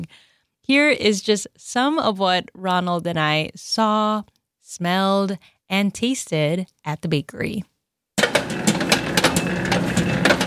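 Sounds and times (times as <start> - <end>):
speech: 0.0 - 7.7
bakery mixer spinning dough for sufganiyot doughnuts: 8.2 - 10.4
irregular knocks and clatters of a bakery mixer: 8.2 - 10.4.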